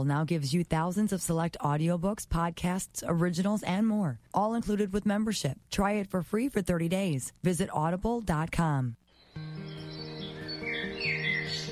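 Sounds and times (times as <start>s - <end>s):
speech: 0.0s - 9.0s
birds chirping and tweeting: 9.1s - 11.7s.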